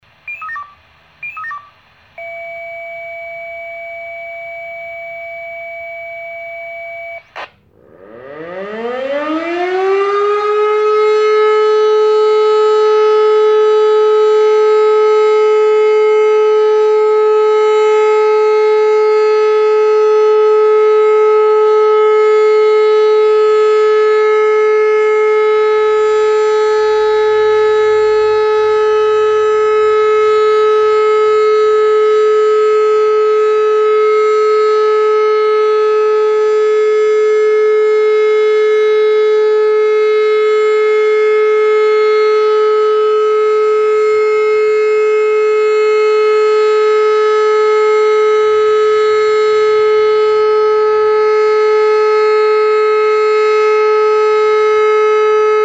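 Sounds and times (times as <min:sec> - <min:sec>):
warning siren: 0:00.0 - 0:55.6.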